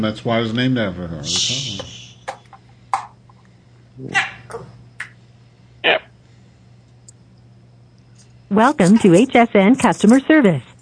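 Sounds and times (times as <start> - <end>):
speech: 0.0 - 2.0, 4.0 - 4.7, 8.5 - 10.7
steady low electrical hum: 0.0 - 10.8
dog barking and yipping over a phone line: 4.1 - 4.5.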